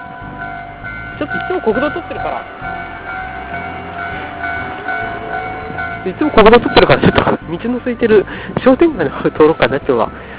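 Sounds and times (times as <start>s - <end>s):
train metallic whining tones: 0.0s - 8.2s
train rumbling past on a railway line: 0.0s - 10.3s
speech: 1.2s - 3.1s, 6.0s - 10.2s.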